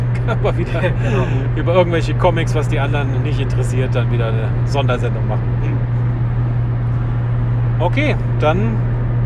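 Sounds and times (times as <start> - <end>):
laughter: 0.0 - 1.6
road noise inside a moving car with low hum and hiss: 0.0 - 9.2
speech: 0.3 - 6.0, 7.8 - 8.9.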